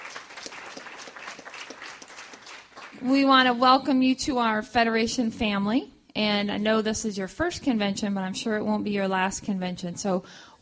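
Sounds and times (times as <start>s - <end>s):
convention audience applauding first-time attendees: 0.0s - 3.1s
speech: 3.0s - 10.6s.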